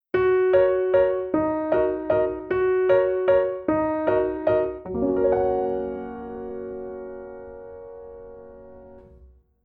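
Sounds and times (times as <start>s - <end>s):
piano: 0.0s - 9.6s.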